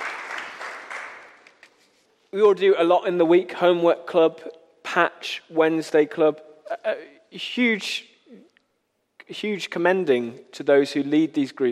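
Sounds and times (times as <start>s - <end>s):
crowd of people applauding: 0.0s - 1.7s
speech: 2.3s - 8.5s, 9.3s - 11.7s.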